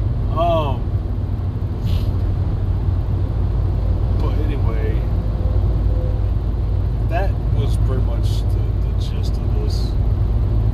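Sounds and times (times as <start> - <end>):
heavy truck engine rumbling past: 0.0 - 10.7
truck air-brake hiss: 1.8 - 2.2.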